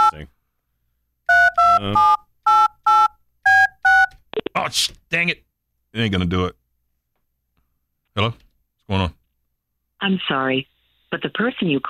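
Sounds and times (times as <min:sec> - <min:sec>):
speech: 0:00.2 - 0:00.4, 0:01.8 - 0:02.2, 0:04.6 - 0:06.6, 0:08.2 - 0:09.2, 0:10.0 - 0:11.8
touch-tone telephone beeps dialing a phone number: 0:01.3 - 0:04.1.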